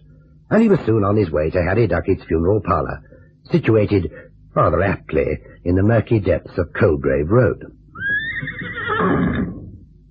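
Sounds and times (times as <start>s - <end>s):
speech: 0.5s - 7.8s
horse neighing: 8.0s - 9.8s.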